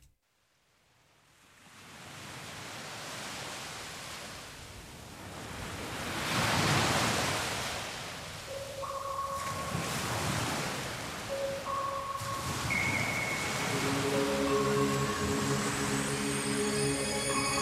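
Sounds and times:
ocean waves breaking on shore: 0:01.5 - 0:17.5
faint high tone: 0:11.3 - 0:17.5.

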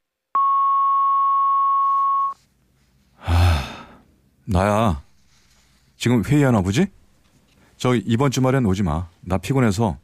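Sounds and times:
long steady electronic beep: 0:00.4 - 0:02.4
person sighing: 0:03.2 - 0:04.0
speech: 0:04.5 - 0:05.0, 0:06.0 - 0:07.0, 0:07.8 - 0:10.0.

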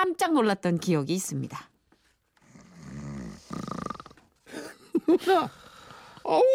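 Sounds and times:
speech: 0:00.2 - 0:01.7, 0:05.1 - 0:05.6, 0:06.3 - 0:06.5
loud snoring: 0:02.4 - 0:04.3.

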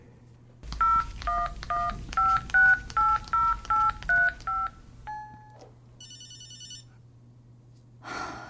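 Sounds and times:
electronic telephone keypad dialing beeps: 0:00.7 - 0:06.8.

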